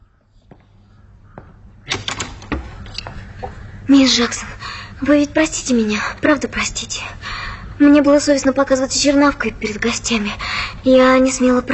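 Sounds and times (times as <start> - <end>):
door opening: 1.4 - 3.7
door latch and handle clicking and rattling: 1.9 - 3.5
speech: 3.9 - 11.7.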